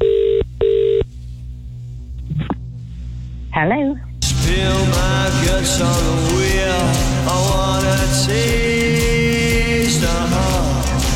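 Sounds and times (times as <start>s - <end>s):
buzzing ringback tones on an outgoing telephone call: 0.0s - 1.1s
quieter low sound: 0.0s - 11.1s
speech: 3.6s - 9.0s.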